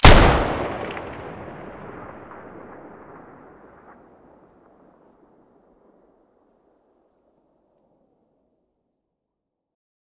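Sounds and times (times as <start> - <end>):
M590 shotgun firing from the muzzle: 0.0 - 4.1.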